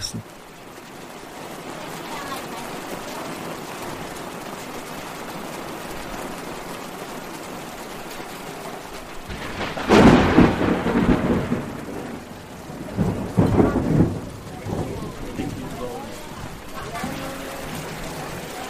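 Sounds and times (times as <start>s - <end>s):
heavy rain pouring: 0.0s - 18.6s
water rushing along the street: 0.0s - 18.6s
loud thunder rumbling: 9.2s - 18.6s
faint voices murmuring: 13.7s - 18.6s.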